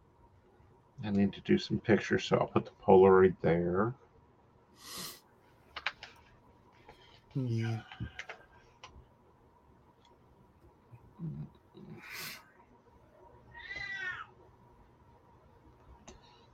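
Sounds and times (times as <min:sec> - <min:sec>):
speech: 0:01.0 - 0:04.0, 0:07.4 - 0:08.3
female cat meowing: 0:13.5 - 0:14.3.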